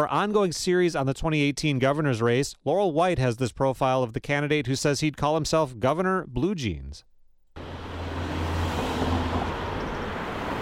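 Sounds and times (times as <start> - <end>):
speech: 0.0 - 7.1
cars speeding by on a busy street: 7.6 - 10.6.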